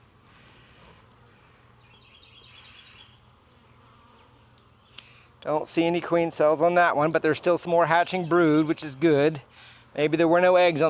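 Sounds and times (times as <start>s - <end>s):
many honeybees buzzing at an open hive: 0.0s - 10.8s
speech: 5.4s - 10.8s.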